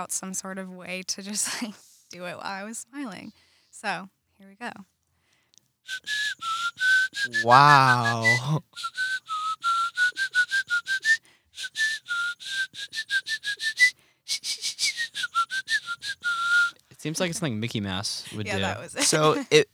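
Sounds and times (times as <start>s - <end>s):
speech: 0.0s - 4.9s, 5.8s - 9.1s, 17.0s - 19.7s
rapid breathy whistling through the teeth while smiling: 5.9s - 16.9s
laughter: 7.3s - 8.6s, 17.1s - 19.6s
listener's surprised exclamation: 7.3s - 8.6s, 18.3s - 19.6s.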